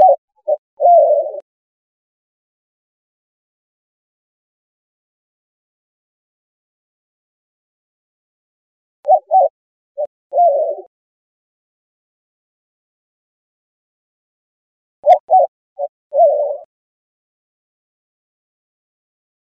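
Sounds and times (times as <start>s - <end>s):
white-winged dove giving low hooting coos: 0.0s - 1.4s, 9.1s - 10.9s, 15.0s - 16.7s.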